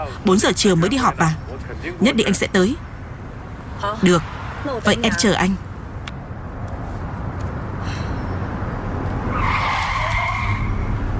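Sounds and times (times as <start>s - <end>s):
road rumble: 0.0s - 11.1s
speech: 0.1s - 2.9s, 3.8s - 5.7s
car skidding with loud tire screech: 7.7s - 11.1s.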